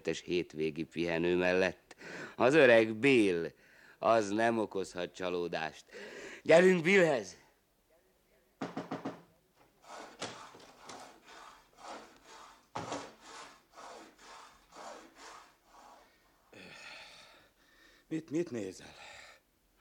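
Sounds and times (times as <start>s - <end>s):
speech: 0.0s - 7.4s, 18.1s - 19.0s
saw rasping through metal gas pipes: 9.7s - 16.2s.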